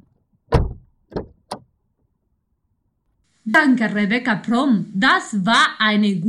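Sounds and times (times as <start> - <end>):
loud car door latch release: 0.5 - 1.7
speech: 3.5 - 6.2.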